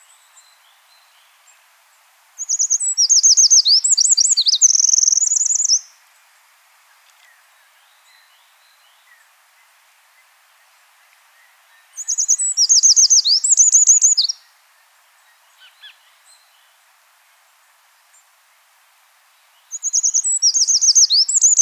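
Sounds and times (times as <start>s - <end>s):
Eurasian wren quiet soft notes: 0.0s - 18.7s, 19.3s - 21.5s
Troglodytes troglodytes Eurasian wren singing high trilled notes: 2.4s - 6.0s, 11.8s - 14.5s, 19.6s - 21.5s.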